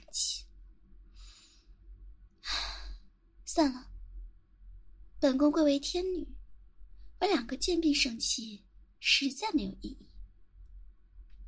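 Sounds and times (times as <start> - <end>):
deep calming breath: 1.1 - 1.8, 2.4 - 3.1
speech: 3.6 - 3.9, 5.2 - 6.4, 7.2 - 10.1.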